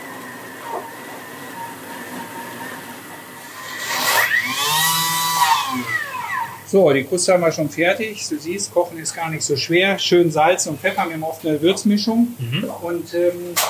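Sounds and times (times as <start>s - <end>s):
blender motor chopping slices of toast bread for a green herb crust: 0.0s - 6.7s
speech: 6.7s - 13.6s.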